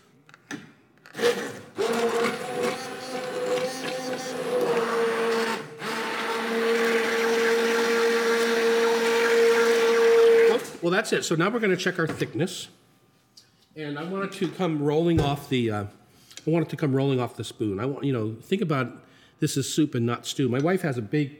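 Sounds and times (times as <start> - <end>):
immersion blender puréeing soup in a pan: 1.1 - 10.8
speech: 10.9 - 12.8, 13.8 - 21.3.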